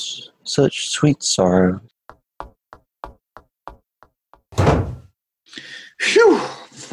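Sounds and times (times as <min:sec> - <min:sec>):
speech: 0:00.0 - 0:01.9
sharp knocks: 0:02.1 - 0:05.0
door swinging shut with a loud heavy thud: 0:04.5 - 0:05.1.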